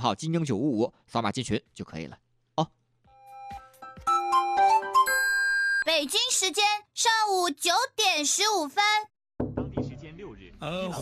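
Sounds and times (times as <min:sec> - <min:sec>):
speech: 0:00.0 - 0:02.8, 0:05.9 - 0:09.1, 0:10.6 - 0:11.0
radio time-signal chime of bright bell-like tones: 0:03.2 - 0:05.9.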